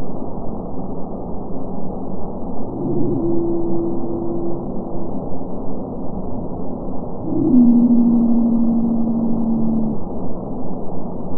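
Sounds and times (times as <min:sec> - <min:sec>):
constant ocean rumble: 0:02.2 - 0:10.3
Madagascan pygmy blue whale song sped up ten times: 0:02.4 - 0:10.2.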